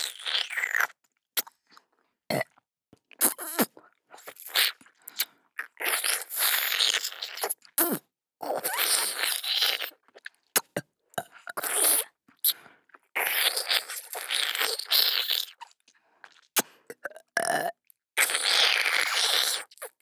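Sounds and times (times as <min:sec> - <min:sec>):
gulping noises: 0:00.0 - 0:20.0
wet burps: 0:02.3 - 0:02.6, 0:16.6 - 0:17.8.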